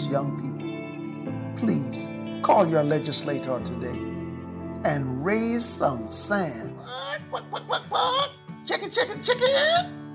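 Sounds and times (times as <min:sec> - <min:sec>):
speech: 0:00.1 - 0:00.5, 0:01.6 - 0:04.1, 0:04.8 - 0:10.0
chicken squawking calls: 0:06.8 - 0:09.9.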